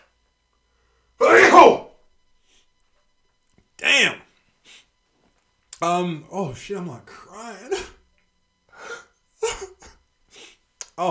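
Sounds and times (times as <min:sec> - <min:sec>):
person sneezing: 0:01.2 - 0:01.9, 0:07.7 - 0:08.0, 0:08.8 - 0:10.6
speech: 0:05.8 - 0:07.8.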